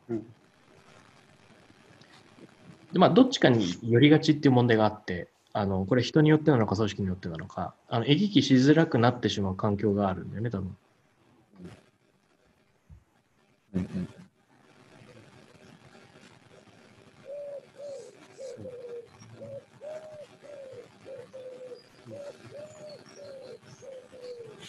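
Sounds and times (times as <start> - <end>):
speech: 0.1 - 0.4, 3.0 - 10.8
pigeon cooing: 17.2 - 24.6.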